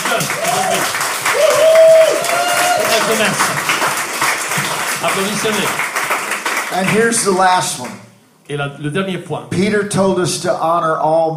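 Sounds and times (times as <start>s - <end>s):
audience applauding: 0.0s - 8.0s
speech: 5.1s - 5.9s, 6.7s - 11.3s.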